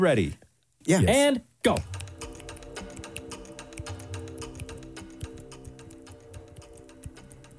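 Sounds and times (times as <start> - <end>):
speech: 0.0 - 2.0
clock ticking steadily and quickly during a timed challenge: 1.7 - 7.5
continuous droning music-like bed: 1.8 - 7.5.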